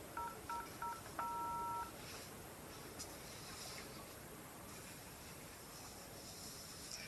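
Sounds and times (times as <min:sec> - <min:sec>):
hiss: 0:00.0 - 0:07.0
telephone keypad tones: 0:00.2 - 0:01.9.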